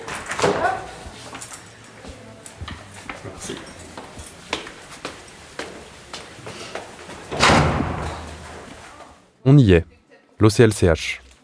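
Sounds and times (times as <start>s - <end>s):
heavy secure door clanking, latching and slamming shut: 7.3s - 8.4s
speech: 9.5s - 11.2s.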